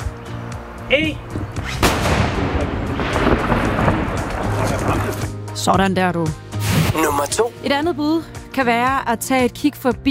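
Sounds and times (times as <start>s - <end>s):
speech: 0.9s - 2.8s, 5.6s - 6.4s, 7.0s - 10.0s
salvaged naval cannon from a sunken artillery ship firing at Bangsbo Fort: 1.8s - 4.8s
long rolling rumble after cannon shot: 1.8s - 5.1s.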